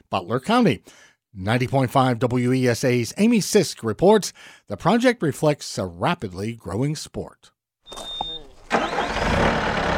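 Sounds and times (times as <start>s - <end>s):
speech: 0.1s - 8.1s
skid steer loader engine starting up at a park: 7.9s - 9.9s.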